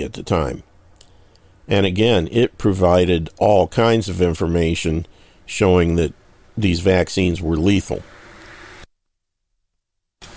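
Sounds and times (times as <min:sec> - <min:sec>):
speech: 0:00.0 - 0:00.7, 0:01.7 - 0:08.1
truck passing on the road outside: 0:08.0 - 0:08.9.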